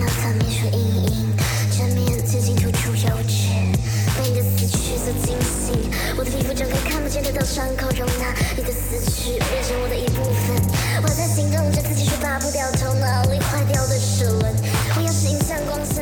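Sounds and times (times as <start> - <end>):
crazed rapping over electronic music: 0.0 - 16.0
dense electronic music track with pulsing bass line and synth tones: 4.6 - 16.0.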